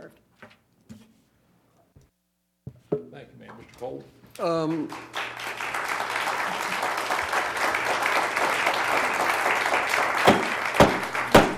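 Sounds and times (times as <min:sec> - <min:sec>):
speech: 0:03.2 - 0:05.3
audience applauding at a public meeting: 0:04.4 - 0:11.5.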